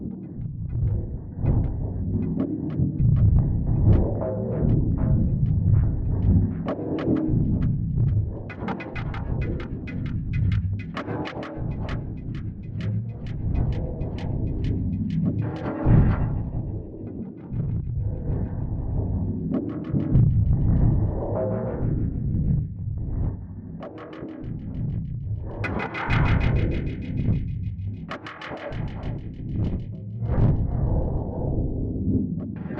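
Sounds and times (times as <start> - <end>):
alien engine hum: 0.4 - 32.7.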